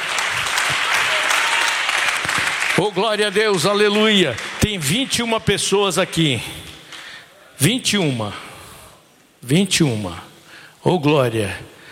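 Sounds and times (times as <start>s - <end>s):
church congregation clapping hands in sustained applause: 0.0s - 7.2s
speech: 2.8s - 6.7s, 7.6s - 8.5s, 9.4s - 11.8s.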